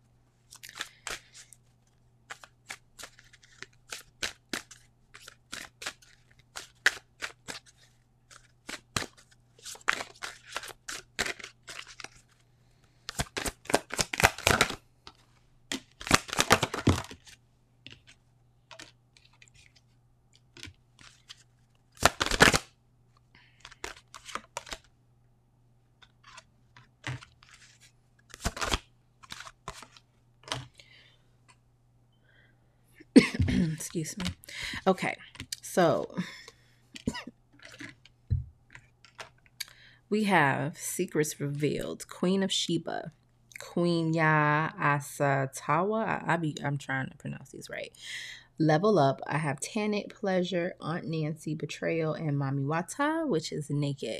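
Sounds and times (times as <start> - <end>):
faint steady hum: 0.0 - 54.1
playing cards being shuffled: 0.5 - 12.4, 13.1 - 22.7, 23.6 - 24.9, 26.0 - 30.7, 33.2 - 34.5, 37.0 - 38.1, 38.7 - 39.4
speech: 34.0 - 35.2, 35.8 - 36.4, 40.1 - 43.2, 43.8 - 54.1.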